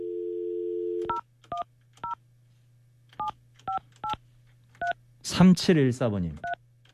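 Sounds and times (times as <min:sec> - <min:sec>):
telephone dial tone: 0:00.0 - 0:01.2
speech: 0:05.3 - 0:06.5.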